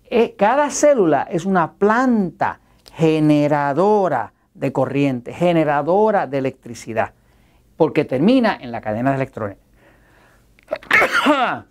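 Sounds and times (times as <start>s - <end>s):
speech: 0.1s - 7.2s, 7.8s - 9.6s, 10.7s - 11.6s
person sneezing: 10.7s - 11.6s.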